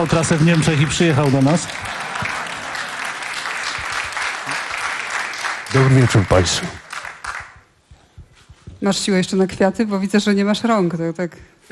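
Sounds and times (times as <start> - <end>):
speech: 0.0 - 2.0, 5.7 - 6.8, 8.8 - 11.6
dense audience applause at a live event: 0.0 - 7.6.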